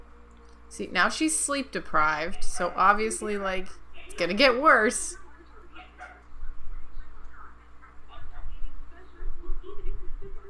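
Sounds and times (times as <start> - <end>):
low rumbling background: 0.0 - 10.4
speech: 0.7 - 5.2
dog barking: 5.8 - 6.3.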